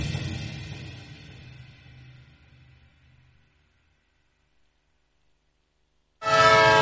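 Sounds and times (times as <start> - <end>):
train horn blaring as the train pulls off: 6.2 - 6.7.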